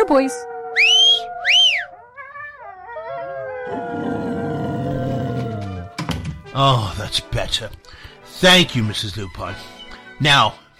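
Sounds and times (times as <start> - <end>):
pack of wolves howling in chorus: 0.0 - 6.0
speech: 0.1 - 0.9, 6.6 - 10.7
sharp rising-and-falling whistles: 0.7 - 1.9.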